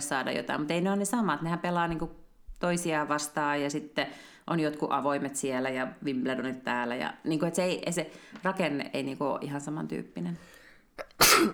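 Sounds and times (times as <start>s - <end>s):
speech: 0.0s - 11.5s
person sneezing: 11.0s - 11.5s.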